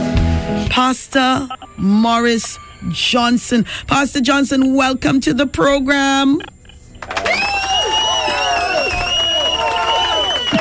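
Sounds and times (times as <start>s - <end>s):
speech: 0.7s - 6.5s
dense crowd cheering and shouting: 7.1s - 10.5s.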